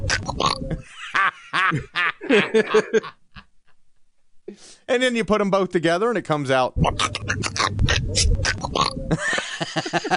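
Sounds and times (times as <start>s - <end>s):
person imitating a raspy quacking cartoon-duck voice: 0.0s - 0.7s, 6.8s - 9.0s
laughter: 0.7s - 3.5s, 9.1s - 10.1s
speech: 1.7s - 3.2s, 4.5s - 10.1s.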